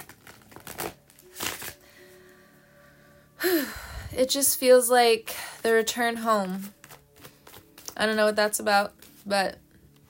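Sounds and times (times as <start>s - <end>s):
deck of tarot cards being shuffled: 0.0s - 1.8s, 6.4s - 8.3s, 8.9s - 9.3s
speech: 4.2s - 6.8s, 8.0s - 9.6s.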